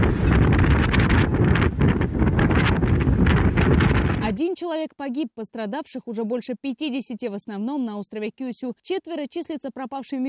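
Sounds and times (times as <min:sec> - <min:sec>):
typhoon rain driven in streams parallel to the ground: 0:00.0 - 0:04.3
fierce roaring typhoon wind blasting against the microphone: 0:00.0 - 0:04.4
speech: 0:04.7 - 0:10.2.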